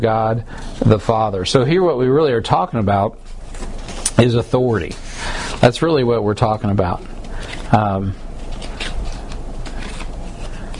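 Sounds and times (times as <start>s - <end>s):
speech: 0.0s - 8.2s
paper notes being shuffled: 3.2s - 10.7s.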